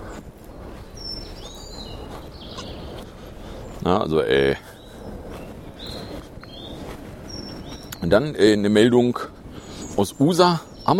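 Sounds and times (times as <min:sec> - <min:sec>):
steady low rumble: 0:00.0 - 0:10.9
thin high bird chirps and whistled trills: 0:00.0 - 0:10.9
speech: 0:03.8 - 0:04.7, 0:08.1 - 0:09.4, 0:10.0 - 0:10.9.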